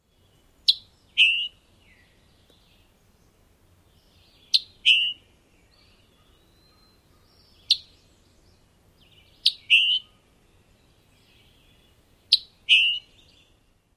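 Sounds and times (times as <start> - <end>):
chick-bree calls: 0.6 - 1.6, 4.5 - 5.2, 9.4 - 10.3, 12.2 - 13.2.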